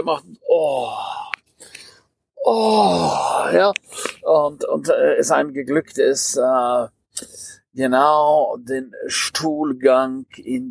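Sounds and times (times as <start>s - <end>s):
speech: 0.0s - 1.1s, 2.4s - 10.6s
person imitating a long drawn-out groan: 0.4s - 1.4s, 2.4s - 3.6s.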